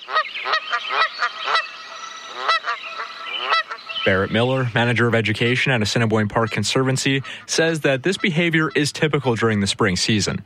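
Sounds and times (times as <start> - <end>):
Canada goose honking: 0.0 - 4.7, 6.2 - 9.4
faint hiss: 0.3 - 10.4
speech: 4.0 - 10.4.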